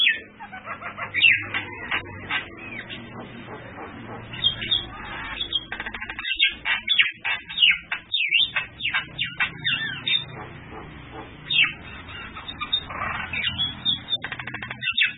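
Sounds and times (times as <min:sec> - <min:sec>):
bird song: 0:00.0 - 0:15.1.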